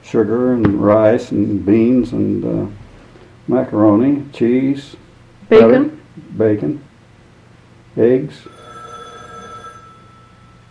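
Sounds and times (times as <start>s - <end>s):
faint hum: 0.0s - 10.7s
speech: 0.1s - 2.8s, 3.5s - 6.9s, 8.0s - 8.7s
telephone ringing with electronic ring tone: 8.4s - 10.7s.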